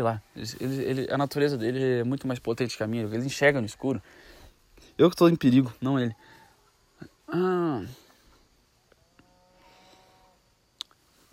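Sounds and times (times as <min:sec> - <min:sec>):
speech: 0:00.0 - 0:04.4, 0:05.0 - 0:06.3, 0:07.0 - 0:08.0
several cows mooing: 0:09.1 - 0:10.5.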